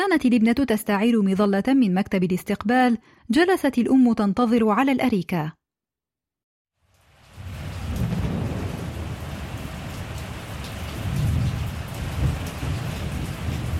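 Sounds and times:
speech: 0.1 - 5.6
heavy rain pouring: 6.9 - 13.7
deep thunder rumbling: 7.4 - 13.7.

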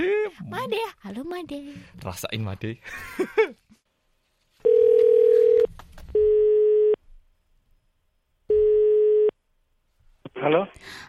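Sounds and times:
speech: 0.4 - 3.6, 10.4 - 11.0
laughter: 2.9 - 3.8
telephone ringback tone while a call is being connected: 4.6 - 7.0, 8.5 - 9.3.

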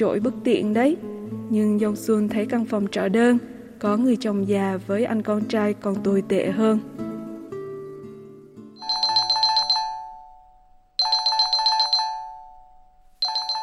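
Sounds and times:
speech: 0.0 - 7.0
telephone ringing with rapid electronic trilling: 8.8 - 13.6.

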